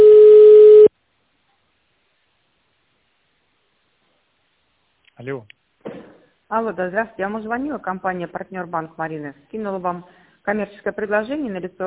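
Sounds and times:
telephone line tone while an automated system transfers a call: 0:00.0 - 0:00.9
speech: 0:06.6 - 0:11.8.

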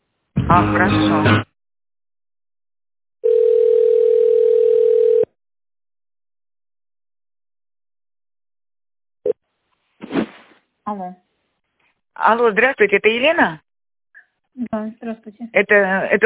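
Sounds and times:
speech: 0:00.5 - 0:01.5, 0:10.9 - 0:11.3, 0:12.2 - 0:13.6, 0:14.6 - 0:16.2
steady telephone line tone while a call is transferred: 0:03.2 - 0:05.4.

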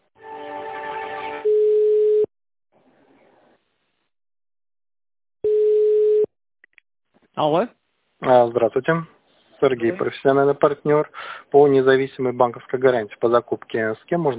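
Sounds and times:
telephone line beeps while a call is transferred: 0:01.5 - 0:02.3, 0:05.4 - 0:06.3
speech: 0:07.4 - 0:14.3.

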